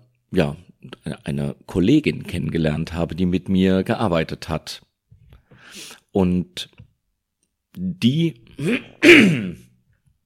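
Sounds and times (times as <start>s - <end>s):
speech: 0.3s - 0.6s, 1.2s - 4.9s, 5.7s - 6.8s, 7.8s - 9.7s
person clearing throat: 8.6s - 9.8s.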